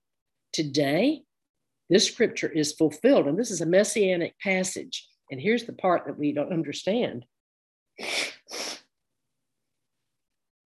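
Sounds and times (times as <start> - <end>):
speech: 0.6 - 1.3, 1.9 - 7.3
person sneezing: 8.0 - 8.9.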